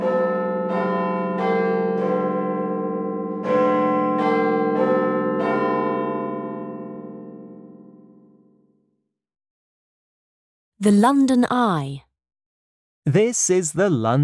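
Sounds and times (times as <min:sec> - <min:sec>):
bell in a 96-metre clock tower ringing the hour: 0:00.0 - 0:08.0
speech: 0:10.8 - 0:12.1, 0:13.0 - 0:14.2.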